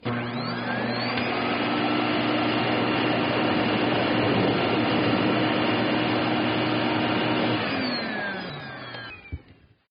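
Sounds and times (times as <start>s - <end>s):
household vacuum cleaner running: 0.0s - 9.8s.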